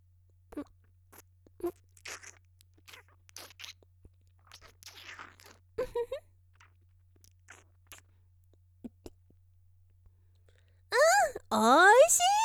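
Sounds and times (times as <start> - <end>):
biting and chewing peeled sweet fruit: 0.5 - 8.1
speech: 11.5 - 12.3.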